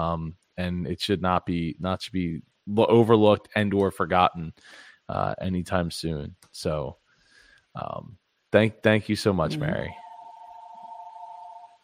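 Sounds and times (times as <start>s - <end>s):
speech: 0.0s - 7.0s, 7.7s - 10.0s
steady electronic incoming phone call tone: 9.5s - 11.8s.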